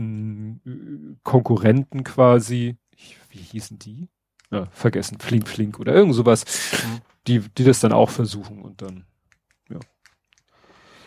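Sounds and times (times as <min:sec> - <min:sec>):
speech: 0:01.2 - 0:09.1, 0:09.7 - 0:09.9
fidget cube clicking: 0:04.3 - 0:04.7, 0:08.8 - 0:11.0.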